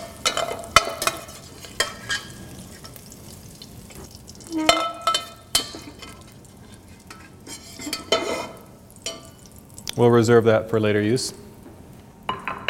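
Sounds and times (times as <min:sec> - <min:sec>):
green peppers, onions and celery sautéing in bacon fat in a pan: 0:00.0 - 0:10.3
stirring scrapes and clacks in a pan: 0:00.3 - 0:03.0, 0:04.7 - 0:09.3
speech: 0:10.0 - 0:11.4.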